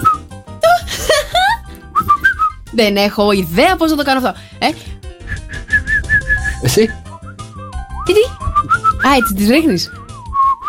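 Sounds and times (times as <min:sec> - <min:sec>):
person whistling with the mouth: 0:00.0 - 0:00.3, 0:01.9 - 0:02.6, 0:05.2 - 0:10.6
speech: 0:02.8 - 0:04.9, 0:06.6 - 0:07.0, 0:08.1 - 0:08.4, 0:09.0 - 0:10.0.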